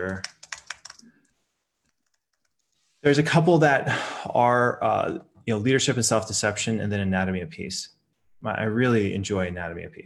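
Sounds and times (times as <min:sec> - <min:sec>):
speech: 0:00.0 - 0:00.3, 0:03.0 - 0:10.0
typing on a computer keyboard: 0:00.0 - 0:01.1, 0:01.9 - 0:02.6.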